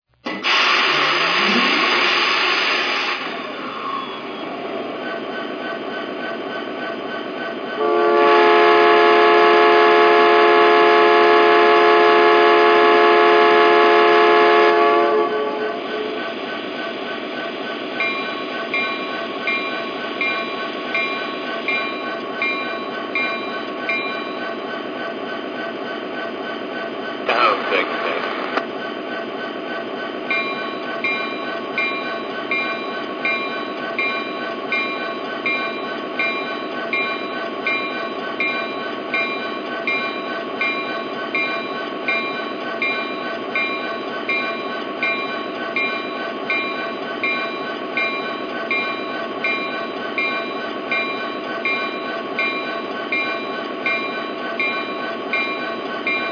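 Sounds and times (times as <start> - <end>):
SD80MAC locomotive train: 0.1 - 56.3.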